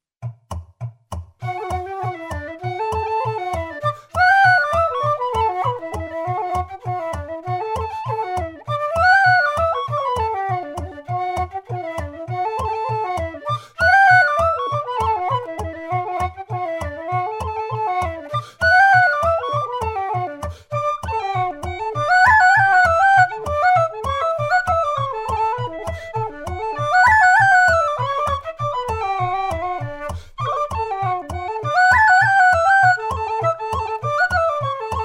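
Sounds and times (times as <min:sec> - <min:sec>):
fast bodhran drumming: 0:00.2 - 0:35.0
fast tin whistle: 0:01.4 - 0:35.0.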